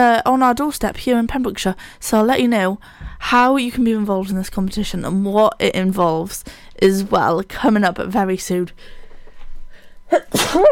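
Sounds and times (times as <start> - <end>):
speech: 0.0 - 9.0, 10.1 - 10.7
stifled sneeze: 10.1 - 10.7.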